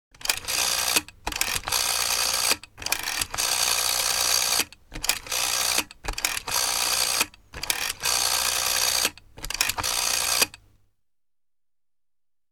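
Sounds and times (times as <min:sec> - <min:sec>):
old rotary dial telephone: 0:00.2 - 0:10.6.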